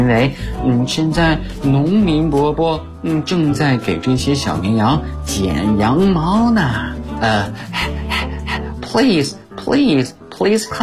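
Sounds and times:
speech: 0.0s - 8.0s, 9.0s - 10.8s
person imitating a dog panting: 7.6s - 8.8s.

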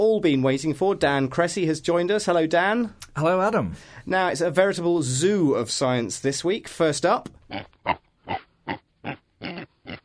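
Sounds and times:
speech: 0.0s - 8.0s
pig grunting and oinking: 7.5s - 10.0s.

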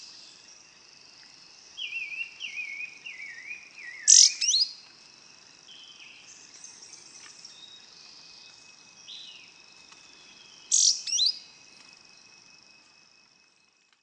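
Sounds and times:
constant buzzing insect chorus: 0.0s - 14.0s
yellow-green grosbeak Caryothraustes canadensis brasiliensis whistled calls: 1.8s - 4.8s, 10.5s - 11.4s.

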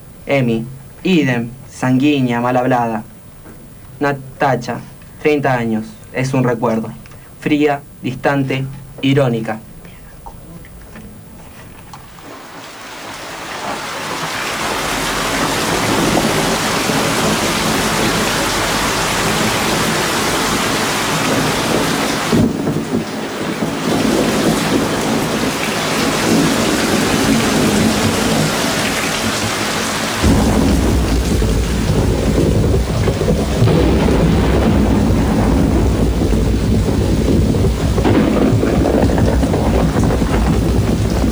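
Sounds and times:
speech: 0.3s - 3.1s, 4.0s - 9.7s
steady heavy rain: 10.4s - 41.3s
low rolling thunder: 13.2s - 41.3s.

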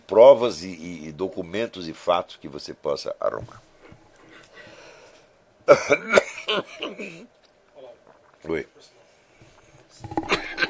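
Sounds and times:
speech: 0.1s - 3.7s, 5.7s - 7.4s, 8.4s - 9.0s
person coughing harshly: 5.7s - 7.3s.

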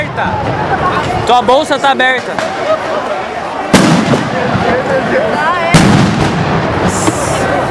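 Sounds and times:
street protest crowd noise and voices: 0.0s - 7.6s
speech: 0.2s - 3.2s
tear gas bombs bursting during a street protest: 3.7s - 4.7s, 5.7s - 7.6s.

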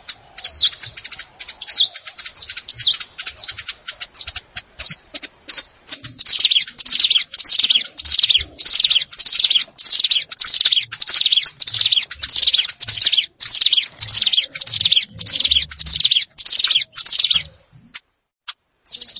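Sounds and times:
sharp clicks: 0.0s - 18.6s
plain prinia singing buzzy wheezy phrases: 0.1s - 18.0s, 18.9s - 19.1s.

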